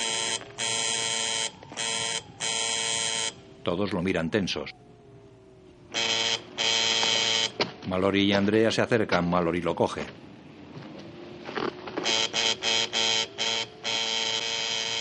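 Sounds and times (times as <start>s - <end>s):
field telephone among stones and plants ringing: 0.0s - 3.4s, 5.9s - 7.6s, 12.0s - 14.9s
speech: 3.6s - 4.9s, 7.9s - 10.3s.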